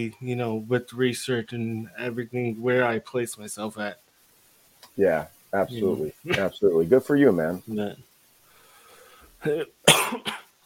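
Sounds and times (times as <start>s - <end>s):
speech: 0.0s - 4.0s, 5.0s - 8.1s, 9.4s - 10.4s
man coughing: 9.4s - 10.5s.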